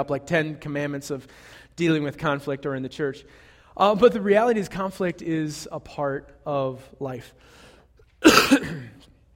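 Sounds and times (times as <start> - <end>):
speech: 0.0 - 7.6
person coughing: 8.2 - 9.1.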